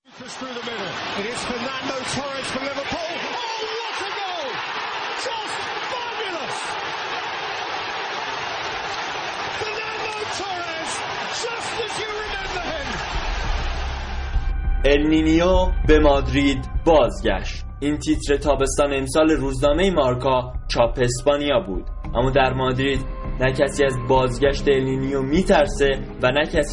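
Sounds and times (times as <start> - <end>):
stadium crowd cheering after a goal: 0.0 - 15.6
speech: 0.2 - 8.0, 9.5 - 13.6, 14.8 - 26.7
match commentator shouting excitedly: 0.7 - 6.8, 9.5 - 13.0.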